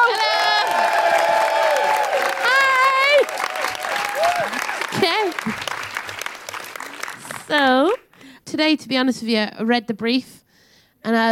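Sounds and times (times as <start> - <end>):
live audience cheering with whoops and high-pitched shouts: 0.0 - 7.4
audience applauding: 0.0 - 8.3
speech: 8.6 - 10.4, 11.0 - 11.3.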